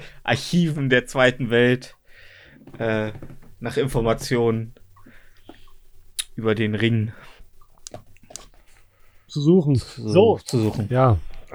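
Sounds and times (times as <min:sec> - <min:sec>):
speech: 0:00.0 - 0:02.0, 0:02.6 - 0:04.8, 0:06.4 - 0:07.3, 0:09.3 - 0:11.5
smacking chewing noises while eating: 0:04.8 - 0:11.5.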